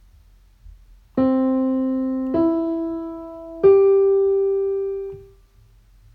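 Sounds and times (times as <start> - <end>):
three-note chord: 1.2 - 5.3.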